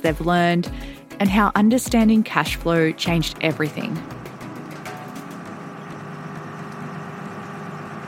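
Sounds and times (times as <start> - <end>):
speech: 0.0 - 4.2
fishing boat engine idling: 3.1 - 8.0.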